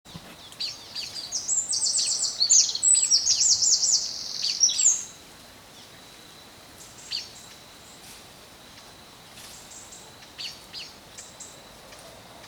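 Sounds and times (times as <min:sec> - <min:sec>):
background hiss: 0:00.1 - 0:12.4
Eurasian wren Troglodytes troglodytes singing sharp notes and buzzing trills: 0:00.4 - 0:05.1.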